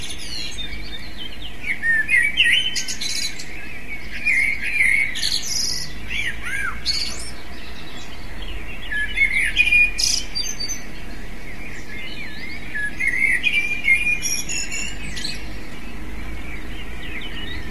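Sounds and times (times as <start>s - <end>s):
Eurasian blackbird singing short warbled phrases: 0.0s - 17.6s.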